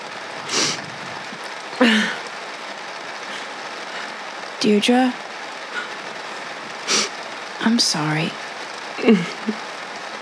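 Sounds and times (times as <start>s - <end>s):
heavy rain pouring: 0.0s - 10.1s
breathy burst: 0.5s - 0.9s, 1.8s - 2.3s, 3.2s - 4.3s, 5.7s - 7.2s
speech: 4.6s - 5.2s, 7.7s - 8.4s, 9.0s - 9.7s.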